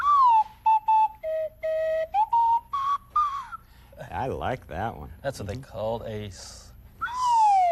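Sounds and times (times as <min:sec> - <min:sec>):
slide whistle toots: 0:00.0 - 0:03.8, 0:07.0 - 0:07.7
speech: 0:04.2 - 0:06.6.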